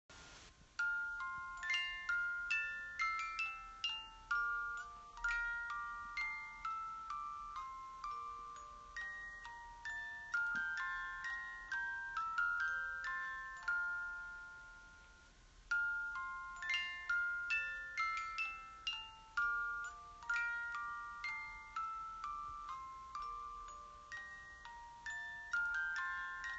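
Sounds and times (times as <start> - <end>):
music boxes playing: 0.7 - 26.5.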